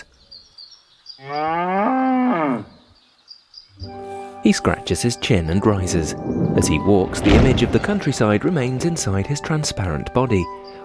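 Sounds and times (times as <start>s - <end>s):
faint outdoor noise: 0.0s - 8.8s
speech: 1.2s - 1.8s, 4.4s - 10.8s
cow mooing: 1.2s - 2.8s.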